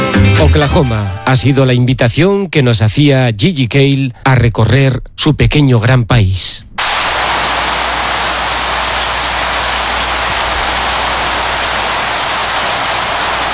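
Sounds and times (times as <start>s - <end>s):
speech: 0.4s - 6.7s
heavy downpour drumming on surfaces: 6.8s - 13.5s.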